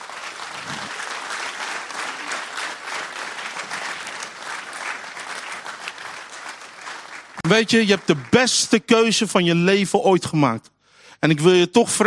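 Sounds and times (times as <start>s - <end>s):
applause from a large audience: 0.0s - 9.1s
speech: 7.5s - 12.0s.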